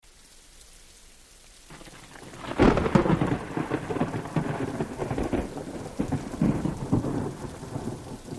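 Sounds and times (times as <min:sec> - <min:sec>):
close thunder clap: 0:01.7 - 0:08.2.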